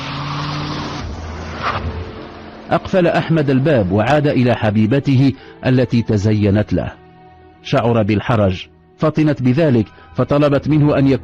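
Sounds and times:
car engine running as the car pulls away: 0.0 - 4.5
speech: 2.7 - 7.0, 7.6 - 11.2.

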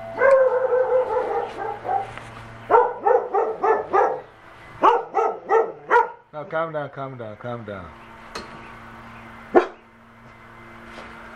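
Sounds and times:
low hum: 0.0 - 11.3
dog barking: 0.2 - 6.3, 9.5 - 9.8
speech: 6.5 - 8.1.

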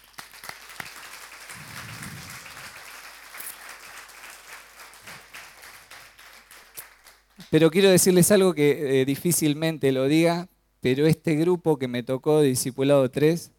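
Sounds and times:
audience applause at a church service: 0.0 - 7.4
speech: 7.5 - 13.5.

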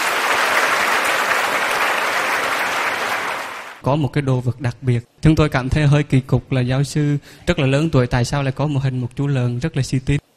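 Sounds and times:
audience applauding a professor at a televised event: 0.0 - 3.8
speech: 3.8 - 10.2.

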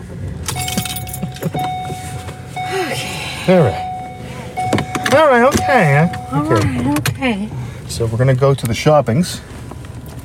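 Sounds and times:
low engine-like rumble: 0.4 - 8.7
keys worn around a woman's neck jangling: 0.5 - 1.9
steady high tone: 0.5 - 7.2
speech: 3.4 - 3.8, 5.2 - 9.5.

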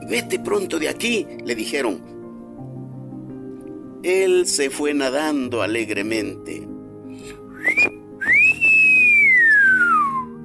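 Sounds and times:
speech: 0.1 - 2.2, 4.0 - 7.9
whistling fish whistling: 7.5 - 10.4.

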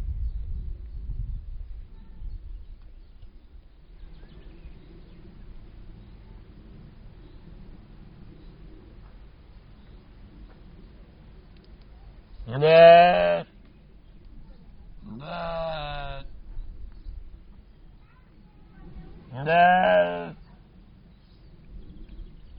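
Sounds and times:
low background hum: 0.0 - 22.5
speech: 12.5 - 13.0
captive Soay sheep bleating in a zoo in Germany: 12.5 - 13.5, 15.1 - 16.3, 19.3 - 20.4.

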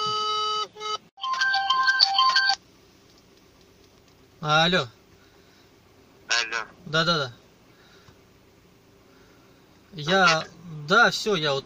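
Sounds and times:
electronic telephone ringback tune during an outgoing call: 1.2 - 2.6
speech: 4.4 - 5.0, 6.6 - 7.4, 10.0 - 11.6.

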